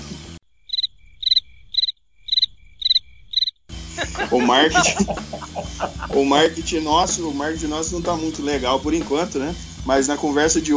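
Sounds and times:
cricket chirping: 0:00.4 - 0:03.7
laughter: 0:03.9 - 0:08.3
speech: 0:04.2 - 0:10.7.

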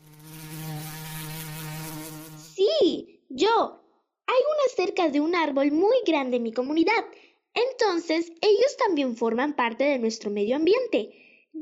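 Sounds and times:
bees buzzing: 0:00.0 - 0:02.6
speech: 0:02.8 - 0:03.8, 0:04.8 - 0:11.6.

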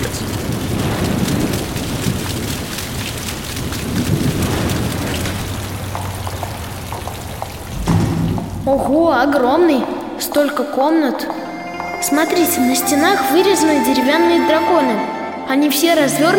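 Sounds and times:
dense rainfall hissing: 0:00.0 - 0:08.9
deep thunder rumbling: 0:00.0 - 0:10.4
speech: 0:08.7 - 0:11.4, 0:12.0 - 0:16.3.

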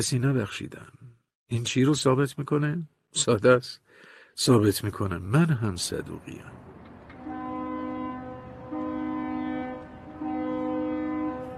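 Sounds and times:
speech: 0:00.0 - 0:03.8, 0:04.4 - 0:06.6
deep ship horn blasts in a harbor: 0:06.8 - 0:11.5.

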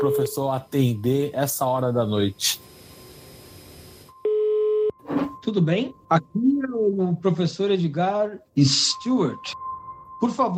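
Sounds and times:
speech: 0:00.0 - 0:02.8, 0:05.5 - 0:09.6, 0:10.2 - 0:10.5
faint telephone line hiss: 0:00.0 - 0:04.2
telephone line tone after dialing a number: 0:04.1 - 0:06.0.

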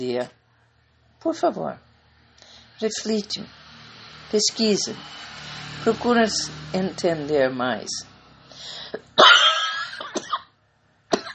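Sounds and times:
speech: 0:00.0 - 0:00.4, 0:01.2 - 0:01.9, 0:02.8 - 0:03.6, 0:04.3 - 0:09.3
person coughing from allergy: 0:09.2 - 0:10.5, 0:11.1 - 0:11.3.

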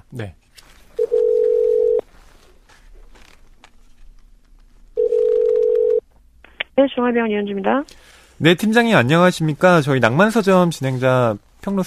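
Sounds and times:
speech: 0:00.1 - 0:00.4, 0:06.8 - 0:11.8
telephone tone beeps while a call is being placed: 0:01.0 - 0:02.0, 0:05.0 - 0:06.0.

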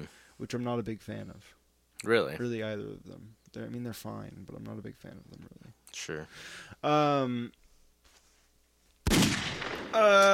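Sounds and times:
speech: 0:00.0 - 0:07.6, 0:09.9 - 0:10.3
gunshot-like blast: 0:09.0 - 0:10.2.

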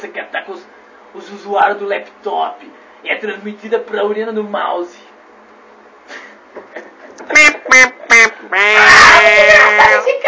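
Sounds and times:
speech: 0:00.0 - 0:05.1, 0:06.8 - 0:07.9
parrot squawking: 0:07.6 - 0:10.1.

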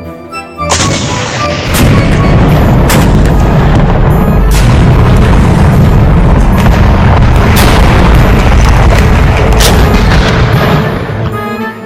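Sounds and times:
heavy gunfire from German tanks and anti-tank guns: 0:00.7 - 0:11.4
booming cannon shots from German tanks and anti-tank guns firing on British units: 0:00.7 - 0:11.5.

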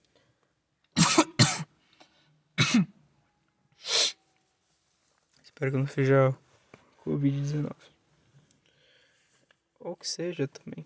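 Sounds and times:
person coughing harshly: 0:01.0 - 0:01.7, 0:02.6 - 0:02.9
speech: 0:02.7 - 0:03.0, 0:05.6 - 0:06.4, 0:07.1 - 0:08.0, 0:09.8 - 0:10.8.

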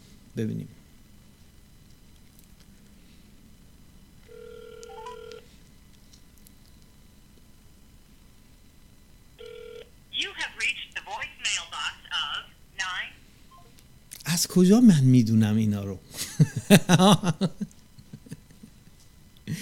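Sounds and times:
speech: 0:00.4 - 0:00.8, 0:14.6 - 0:17.7
steady electronic telephone ringing tone: 0:04.3 - 0:05.4, 0:09.4 - 0:09.9
automated-sounding voice over the phone line: 0:10.2 - 0:13.2
laughter: 0:16.2 - 0:18.7.

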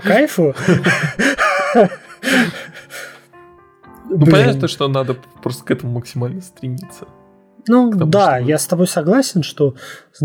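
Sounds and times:
speech: 0:00.0 - 0:02.8, 0:04.1 - 0:10.2
laughter: 0:00.5 - 0:03.1
deliberate deep breathing: 0:00.6 - 0:03.3.

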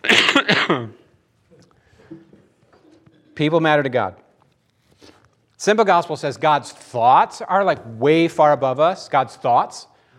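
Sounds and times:
single loud cough with a rough, voiced edge: 0:00.0 - 0:01.1
speech: 0:00.4 - 0:01.0, 0:03.4 - 0:04.2, 0:05.6 - 0:09.9.

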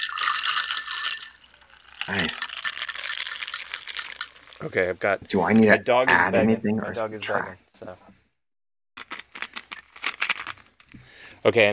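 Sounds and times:
tonic water pouring into a glass: 0:00.0 - 0:04.7
speech: 0:02.1 - 0:02.4, 0:04.6 - 0:08.2, 0:11.4 - 0:11.7.

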